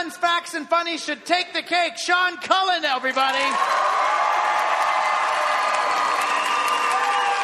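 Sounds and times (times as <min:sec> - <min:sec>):
speech: 0:00.0 - 0:04.0
scattered applause: 0:03.2 - 0:07.4
large audience cheering loudly with shouts and whoops: 0:03.5 - 0:07.4.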